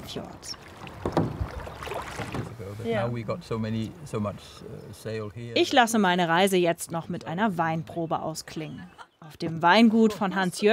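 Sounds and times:
kayak paddle splashing and dipping through water: 0.0s - 3.2s
speech: 0.1s - 1.3s, 1.9s - 10.7s.

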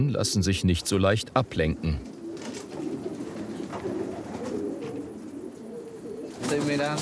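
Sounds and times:
speech: 0.0s - 2.9s, 6.5s - 6.9s
several pigeons cooing in a pigeon loft: 0.0s - 6.9s.

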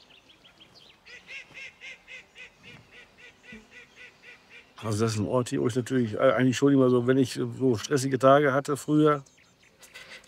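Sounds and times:
ducks quacking at a farm pond: 1.1s - 5.2s
speech: 4.8s - 9.4s.

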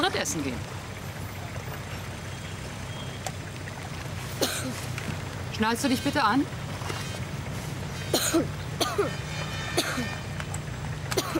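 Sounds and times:
steady low engine hum: 0.0s - 11.3s
speech: 0.1s - 0.8s, 5.6s - 7.0s, 8.3s - 9.2s
child coughing: 4.4s - 4.8s, 8.1s - 9.2s, 9.8s - 10.2s, 11.2s - 11.3s.

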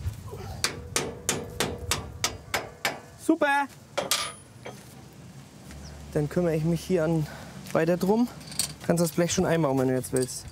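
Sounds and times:
hammer driving a bolt back into place during a field repair at the wheat harvest: 0.6s - 3.1s, 4.0s - 4.8s
speech: 3.3s - 3.8s, 6.1s - 10.5s.

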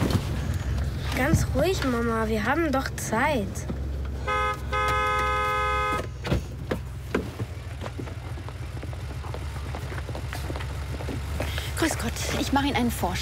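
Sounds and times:
low rumbling traffic noise: 0.0s - 13.1s
speech: 1.2s - 3.7s, 11.8s - 13.1s
car horn blasts: 4.2s - 6.3s.

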